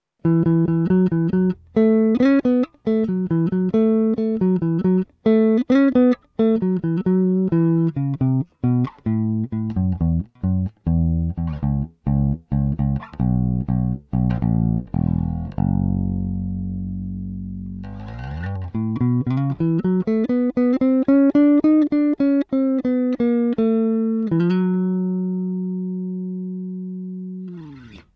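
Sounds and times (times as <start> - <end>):
clean bass: 0.2 - 28.1.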